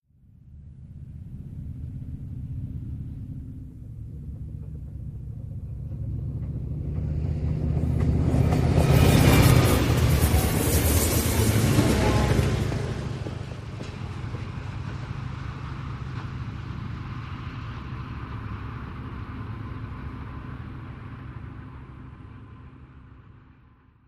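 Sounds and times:
heavy diesel train passing close: 0.3s - 24.0s.

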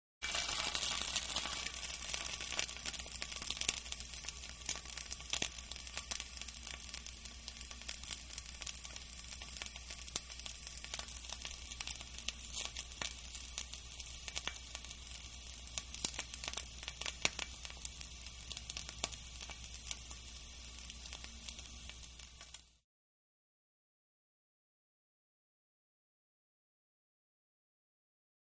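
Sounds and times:
meat frying with dry sizzle close-up: 0.2s - 22.8s.

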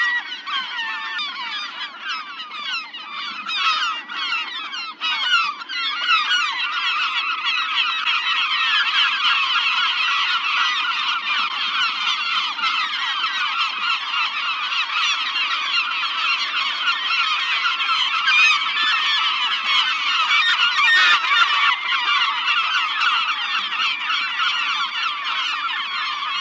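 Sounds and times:
dense flock of gulls squawking: 0.0s - 26.3s.

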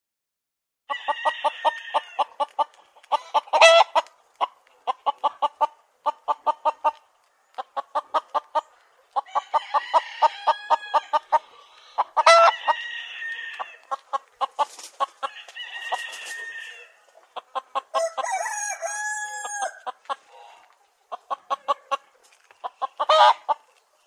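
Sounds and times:
chicken crowing: 0.9s - 2.4s, 9.3s - 11.4s, 12.2s - 13.8s, 15.2s - 17.0s, 17.8s - 20.0s
chickens clucking: 1.0s - 24.0s.

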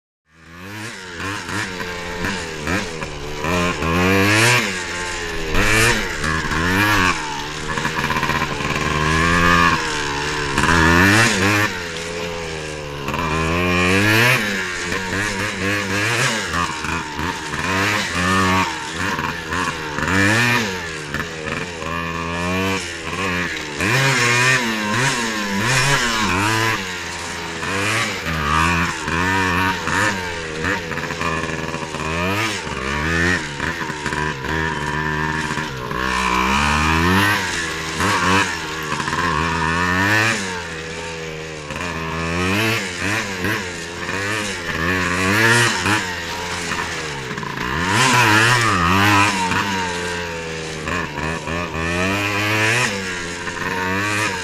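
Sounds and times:
100 dirt bike engine scrambling: 0.2s - 54.4s.

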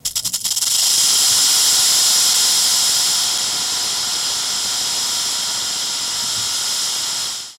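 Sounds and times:
rattlesnake rattling: 0.0s - 7.5s.

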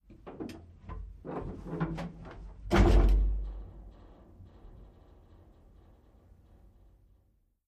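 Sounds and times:
M60 tank interior hatch: 1.8s - 4.8s.

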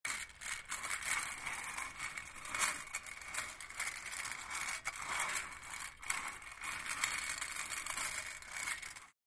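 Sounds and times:
metal casters rolling: 0.1s - 9.2s.

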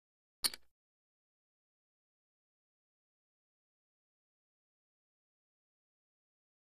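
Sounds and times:
casino poker chips stacking: 0.4s - 0.7s.

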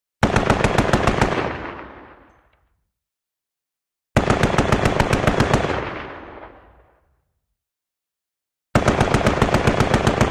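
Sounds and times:
.50 caliber gun firing medium-long bursts: 0.2s - 2.3s, 4.2s - 6.6s, 8.8s - 10.3s.

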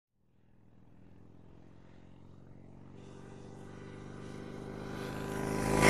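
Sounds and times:
Harley-Davidson motorcycle horn: 2.8s - 5.7s.

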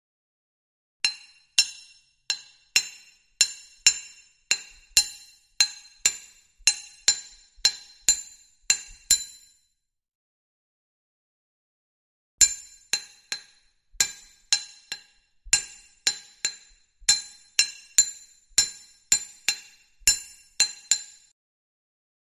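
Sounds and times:
hammer striking: 1.0s - 9.5s, 12.4s - 21.3s.

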